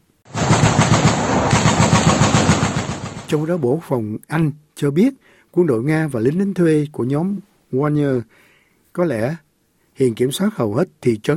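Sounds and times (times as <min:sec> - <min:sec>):
rapid automatic gunfire: 0:00.3 - 0:03.6
speech: 0:03.3 - 0:08.4, 0:09.0 - 0:09.4, 0:10.0 - 0:11.3.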